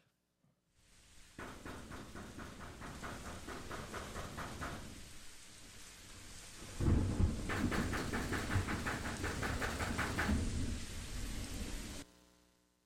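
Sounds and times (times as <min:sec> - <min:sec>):
heavy rain: 0:00.8 - 0:12.1
loud rapid banging on a metal door: 0:01.4 - 0:05.0, 0:06.8 - 0:10.6.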